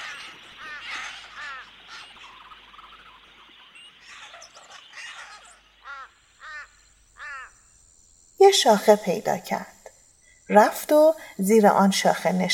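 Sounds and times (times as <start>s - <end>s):
crows cawing harshly: 0.0s - 2.8s, 4.0s - 7.6s
busy outdoor hiss: 0.0s - 12.5s
other birds chattering: 0.0s - 12.5s
speech: 8.5s - 9.7s, 10.5s - 12.5s.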